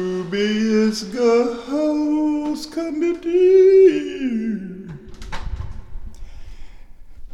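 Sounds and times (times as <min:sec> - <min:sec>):
speech: 0:00.0 - 0:04.7
door creaking: 0:04.8 - 0:07.3
door shutting with a muffled thump: 0:04.9 - 0:06.3.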